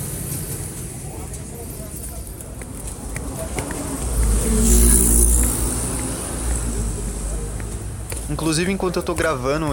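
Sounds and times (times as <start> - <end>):
city traffic rumbling in São Paulo Brazil: 0.0 - 9.7
vehicle passing with low engine noise in São Paulo: 2.3 - 9.0
speech: 8.4 - 9.7.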